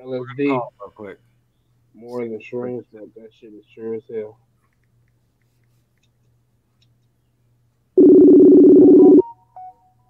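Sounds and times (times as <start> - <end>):
speech: 0.0 - 1.3, 2.0 - 4.5
outgoing Messenger call ringing tone on a phone: 8.0 - 9.8.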